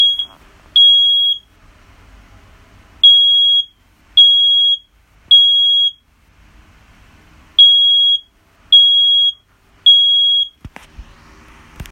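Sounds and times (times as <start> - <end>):
smoke alarm: 0.0 - 1.5, 3.0 - 6.0, 7.6 - 10.6.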